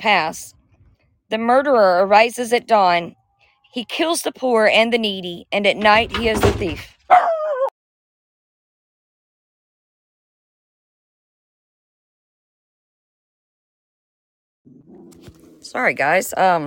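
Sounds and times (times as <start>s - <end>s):
speech: 0.0s - 0.6s, 1.3s - 7.2s, 15.2s - 16.6s
dog barking: 7.1s - 7.7s.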